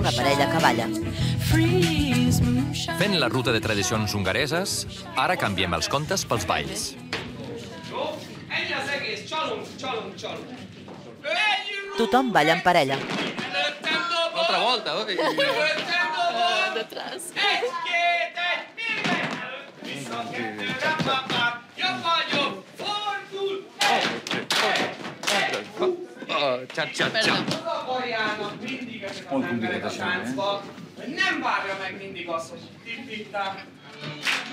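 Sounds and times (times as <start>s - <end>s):
continuous voices: 0.0s - 34.5s
speech: 0.1s - 7.2s, 9.4s - 13.4s, 14.5s - 16.1s, 23.4s - 34.5s
laughter: 15.0s - 17.9s
rhythmic hand clapping: 23.8s - 25.7s, 34.2s - 34.5s.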